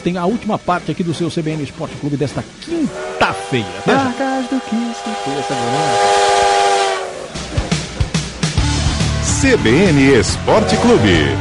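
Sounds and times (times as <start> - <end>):
speech: 0.0 - 6.3, 9.4 - 11.3
chugging rhythmic clatter of a passing train: 0.0 - 11.3
steam train whistle: 2.6 - 7.4, 10.4 - 11.3.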